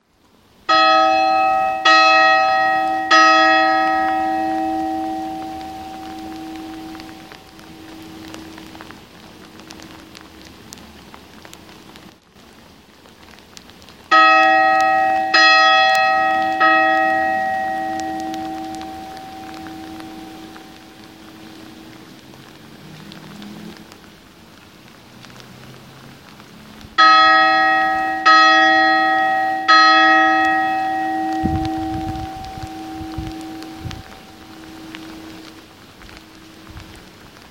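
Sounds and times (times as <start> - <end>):
rain: 0.0 - 37.4
Angelus bell ringing in rain: 0.7 - 8.5, 14.1 - 20.8, 27.0 - 35.4.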